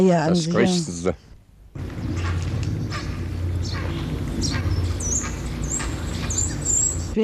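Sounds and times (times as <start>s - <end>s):
speech: 0.0s - 1.9s
steady low rumble: 0.0s - 7.2s
colony of nesting birds in a tree squawking harshly: 1.8s - 7.2s.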